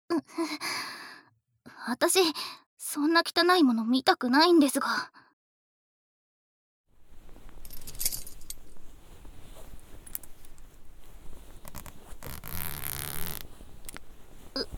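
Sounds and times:
speech: 0.2 - 0.9, 1.8 - 5.2
belt buckle clinking as it is undone: 7.4 - 8.9, 9.7 - 11.0, 11.6 - 14.1
trouser zipper being pulled down: 9.4 - 14.7.

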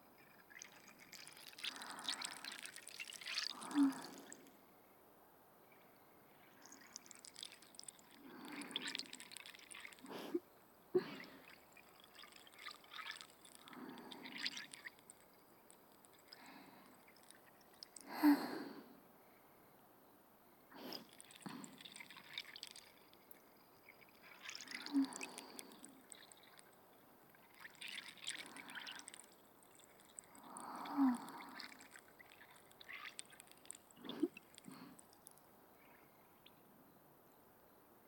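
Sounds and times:
carbonated bubbles fizzing and popping: 0.0 - 4.5, 6.4 - 10.4, 11.0 - 18.5, 20.8 - 35.4
wet drips and trickles: 0.0 - 4.6, 6.3 - 10.4, 11.0 - 18.2, 20.8 - 35.5.

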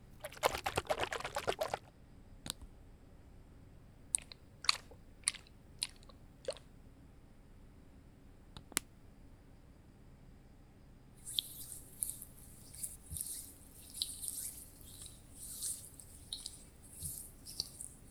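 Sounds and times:
lotion and anti-itch ointment being rubbed on: 0.2 - 1.9, 4.2 - 6.6, 11.2 - 18.0
right ear being picked with a bamboo ear pick: 11.3 - 18.0.

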